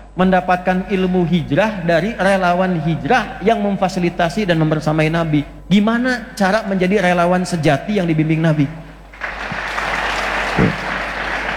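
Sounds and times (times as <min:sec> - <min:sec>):
speech: 0:00.2 - 0:08.8
audience applause with many hands clapping: 0:09.1 - 0:11.5.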